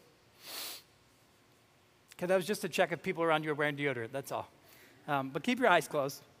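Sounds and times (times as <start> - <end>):
audience sniffing in through their noses: 0.4 - 0.9
speech: 2.2 - 6.3.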